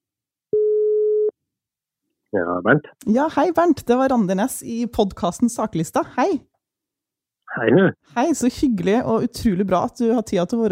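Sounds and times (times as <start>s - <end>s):
telephone line tone while a call is being placed: 0.6s - 1.3s
speech: 2.3s - 6.5s, 7.5s - 10.7s.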